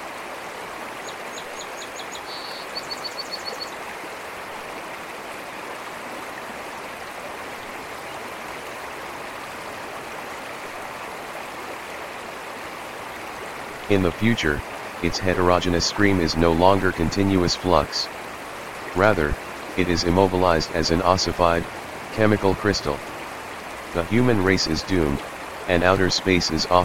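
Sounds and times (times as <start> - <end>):
waterfall roaring: 12.9 - 26.8
speech: 13.9 - 18.2, 18.9 - 23.1, 23.9 - 26.8.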